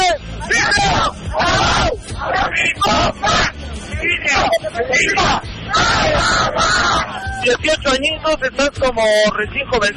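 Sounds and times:
crowd babble: 0.2s - 9.9s
group of voices shouting a rhythmic cheer chant: 0.4s - 7.5s
speech: 7.8s - 9.9s.

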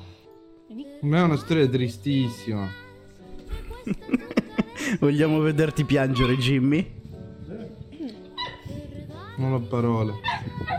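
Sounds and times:
speech: 0.7s - 2.8s, 4.8s - 7.0s, 9.4s - 10.4s
laughter: 3.5s - 5.0s
dog whimpering: 7.5s - 8.8s, 10.2s - 10.7s.

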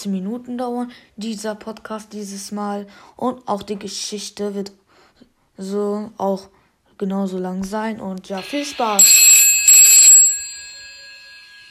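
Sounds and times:
speech: 0.0s - 9.4s
old-fashioned telephone bell ringing: 8.8s - 11.7s.

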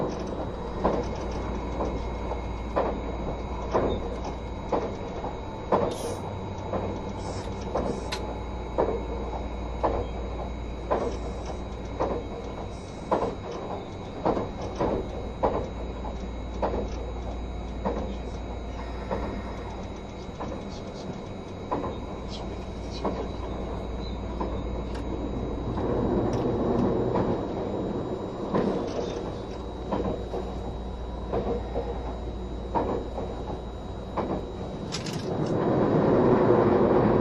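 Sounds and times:
clacks from the rail joints: 0.0s - 37.1s
low running rumble aboard a hybrid train: 0.0s - 37.1s
thin electric motor whine aboard a hybrid train: 0.0s - 37.1s.

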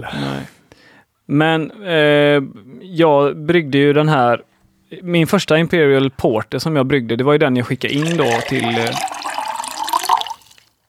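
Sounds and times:
speech: 0.0s - 0.6s, 1.3s - 9.2s
water trickling: 7.9s - 10.8s.

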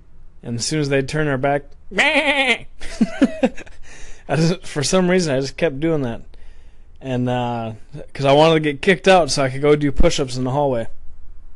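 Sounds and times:
speech: 0.4s - 3.7s, 4.3s - 6.3s, 7.0s - 11.0s
person imitating a goat bleat: 1.9s - 2.8s
laughter: 2.0s - 3.8s.

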